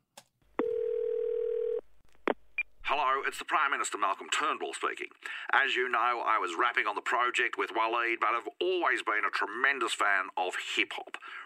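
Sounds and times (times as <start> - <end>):
electronic telephone tone: 0.6 - 1.8
speech: 2.9 - 11.4.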